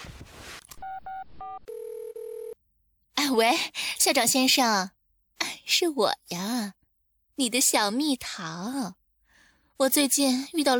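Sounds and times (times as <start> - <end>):
rustling noise: 0.0 - 0.8
telephone ringing tone: 0.8 - 2.6
speech: 3.3 - 5.0, 5.7 - 6.8, 7.4 - 9.0, 9.8 - 10.7.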